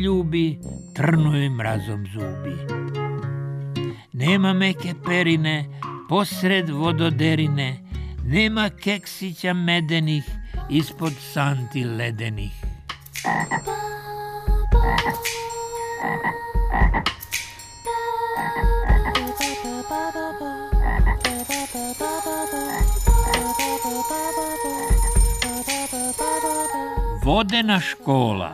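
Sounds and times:
speech: 0.0 - 3.3, 4.2 - 12.6, 13.2 - 13.9, 14.8 - 17.2, 18.4 - 18.9, 19.9 - 28.5
frogs croaking in water: 13.2 - 13.8, 15.8 - 17.2, 18.4 - 19.6, 20.8 - 26.7
layered ringing tones: 21.1 - 27.4.

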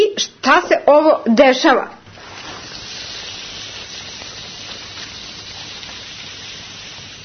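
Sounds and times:
speech: 0.5 - 2.0
cup dissolving in acetone nail polish remover, fizzing hiss: 2.1 - 7.2.

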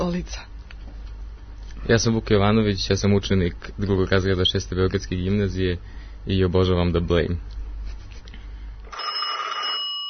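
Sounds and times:
speech: 0.0 - 0.5, 1.8 - 7.6
low rumbling noise: 0.0 - 8.9
telephone ringing with a bright electronic trill: 8.9 - 10.0.

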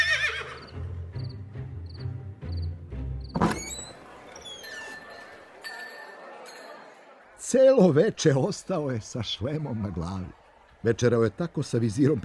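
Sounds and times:
horse whinnying: 0.0 - 0.8
speech: 7.5 - 12.2.

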